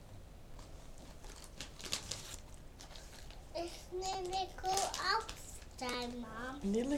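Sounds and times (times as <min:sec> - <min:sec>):
soft crinkling of a crisp packet: 0:01.0 - 0:03.4, 0:04.0 - 0:06.9
speech: 0:03.6 - 0:06.9.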